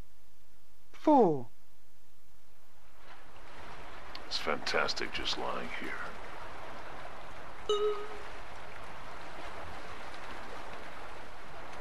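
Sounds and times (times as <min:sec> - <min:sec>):
speech: 0:01.0 - 0:01.5, 0:04.4 - 0:06.2, 0:07.7 - 0:08.3
ocean waves with steady surf: 0:03.0 - 0:11.7
brief tonal ping: 0:07.7 - 0:08.2.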